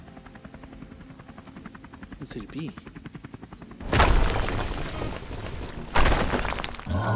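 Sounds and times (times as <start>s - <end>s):
helicopter rotor chopping: 0.0s - 3.9s
speech: 2.2s - 3.0s
crash of breaking debris through a building wall: 3.8s - 7.0s.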